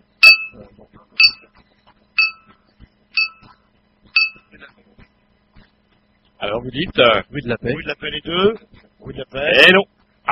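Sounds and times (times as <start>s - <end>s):
bright metallic game show bell dinging: 0.2s - 0.6s, 1.2s - 1.4s, 2.2s - 2.5s, 3.2s - 3.5s, 4.2s - 4.5s
speech: 6.5s - 10.3s.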